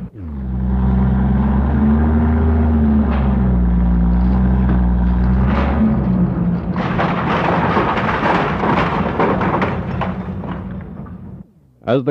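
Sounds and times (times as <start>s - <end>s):
loud deep machine rumble: 0.0s - 11.6s
wrecking ball breaking through brick church tower walls: 0.1s - 11.4s
dense crashing and clattering debris: 0.6s - 11.5s
bricks and mortar falling: 2.2s - 11.4s.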